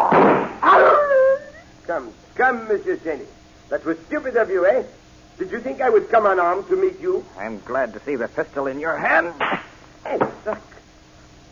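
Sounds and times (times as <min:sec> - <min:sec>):
dog whining: 0:00.0 - 0:01.8
speech: 0:02.0 - 0:10.7.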